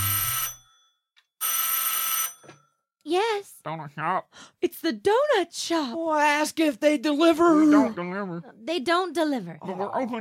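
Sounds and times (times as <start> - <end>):
telephone ringing: 0.0 - 2.8
speech: 3.1 - 10.1.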